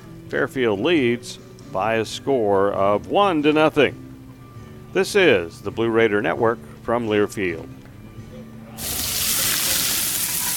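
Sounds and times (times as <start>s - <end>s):
speech: 0.3s - 4.0s, 4.9s - 7.8s
juicy cheesy burger sizzling on a hot grill: 8.8s - 10.5s.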